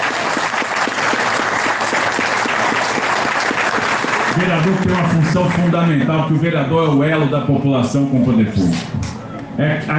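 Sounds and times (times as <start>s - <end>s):
audience applause for city councillors: 0.0s - 5.8s
speech: 4.4s - 9.9s.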